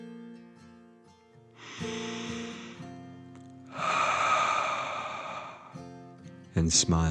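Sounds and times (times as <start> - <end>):
slow deep breath in and out for a calming dragon-breath exercise: 1.6 - 6.2
speech: 6.6 - 7.0.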